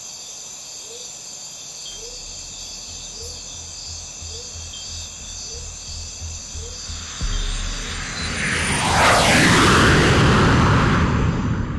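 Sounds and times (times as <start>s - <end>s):
futuristic jet flying overhead with turbines whirring: 5.3s - 11.7s.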